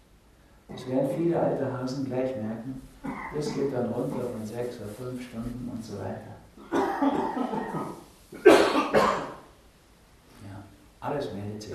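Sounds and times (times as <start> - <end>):
speech: 0.8 - 9.2, 11.0 - 11.7
person coughing: 3.0 - 4.4, 6.6 - 9.4.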